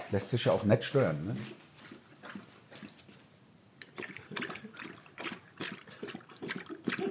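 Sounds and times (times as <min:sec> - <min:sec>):
speech: 0:00.1 - 0:01.6
dog lapping and smacking at water: 0:01.8 - 0:03.1, 0:03.8 - 0:07.0.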